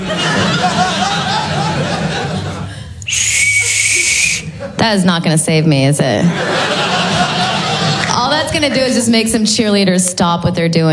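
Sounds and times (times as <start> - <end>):
crowd laughter: 0.0 - 5.2, 6.0 - 9.2
loud shrill blast from a rape whistle: 3.1 - 4.5
speech: 4.8 - 7.0, 8.5 - 10.9.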